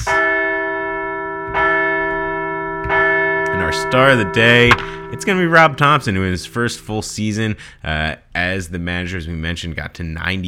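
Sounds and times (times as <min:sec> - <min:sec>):
large bell rung to celebrate a baseball team's win: 0:00.0 - 0:07.5
speech: 0:03.9 - 0:10.4.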